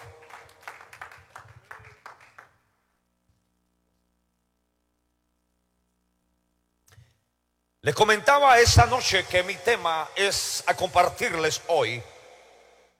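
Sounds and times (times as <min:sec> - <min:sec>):
audience applause: 0:00.0 - 0:02.6
faint sustained hum: 0:00.0 - 0:12.9
speech: 0:07.8 - 0:12.1.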